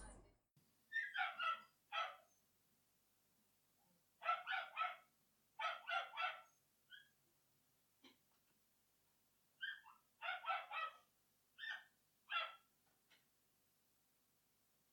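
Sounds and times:
dog barking and yapping: 0.9 - 2.4, 4.2 - 7.2, 9.6 - 12.7.

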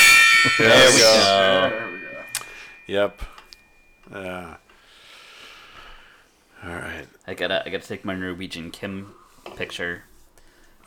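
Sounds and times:
struck gong ringing: 0.0 - 3.2
speech: 0.4 - 2.0, 2.9 - 3.4, 4.1 - 4.6, 6.6 - 10.1.

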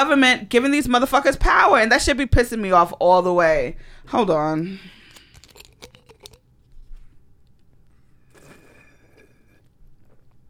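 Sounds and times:
speech: 0.0 - 5.0
person gulping down a drink: 5.1 - 6.5, 8.3 - 10.3.

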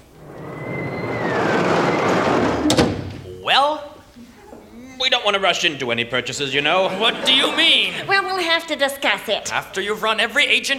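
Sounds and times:
roller coaster rumbling and rattling: 0.0 - 3.4
thin scream of riders: 0.1 - 3.6
speech: 5.3 - 10.7
laughter: 6.7 - 8.2.

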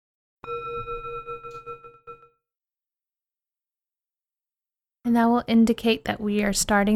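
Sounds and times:
small sound bowl struck for a guided meditation: 0.4 - 2.4
speech: 5.1 - 6.9.

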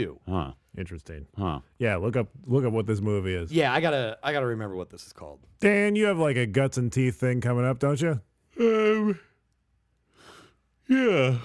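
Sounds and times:
speech: 0.0 - 9.3, 10.9 - 11.4
person yawning: 8.6 - 9.4, 10.8 - 11.4.

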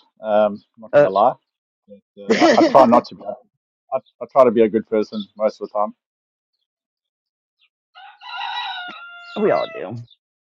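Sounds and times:
speech: 0.2 - 6.0, 9.4 - 10.2
laughter: 2.3 - 3.2
rooster crowing: 8.0 - 10.0.

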